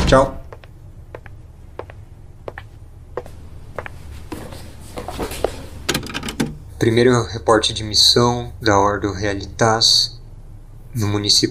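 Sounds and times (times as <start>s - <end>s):
low hum: 0.0s - 11.4s
speech: 0.1s - 0.4s, 6.8s - 10.2s, 10.9s - 11.4s
door being closed with mechanical clicks: 4.2s - 6.6s.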